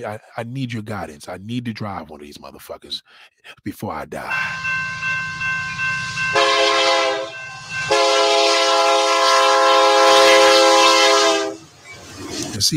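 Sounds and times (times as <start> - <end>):
speech: 0.0 - 5.0, 12.6 - 12.7
low rumble of the train: 4.3 - 12.6
train horn blasts: 4.4 - 11.7.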